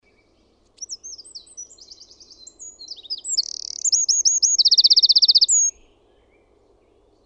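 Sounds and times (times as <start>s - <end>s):
Eurasian wren singing: 0.8s - 5.8s.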